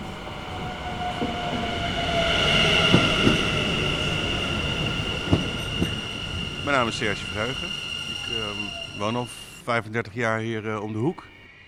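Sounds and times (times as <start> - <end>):
high metallic train wheel squeal: 0.0 - 9.8
train rumbling through Muidenpoort station: 0.0 - 11.5
train cars clanking over track joints: 0.6 - 8.6
speech: 6.7 - 7.8, 8.7 - 11.3.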